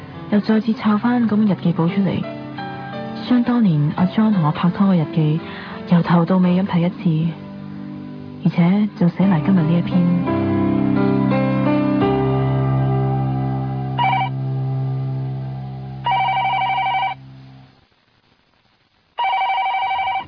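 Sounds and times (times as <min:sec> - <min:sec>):
soft piano-like music: 0:00.0 - 0:17.4
speech: 0:00.3 - 0:02.4, 0:03.3 - 0:07.4, 0:08.4 - 0:10.6
telephone ringing with electronic ring bursts: 0:14.0 - 0:14.3, 0:16.0 - 0:17.2, 0:19.2 - 0:20.2.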